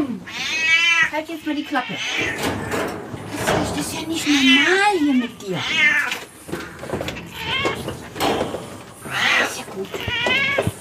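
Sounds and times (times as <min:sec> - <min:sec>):
cat meowing: 0:00.0 - 0:02.4, 0:04.0 - 0:06.2, 0:07.2 - 0:07.9, 0:09.0 - 0:10.7
speech: 0:01.1 - 0:03.0, 0:03.8 - 0:06.2, 0:09.8 - 0:10.6.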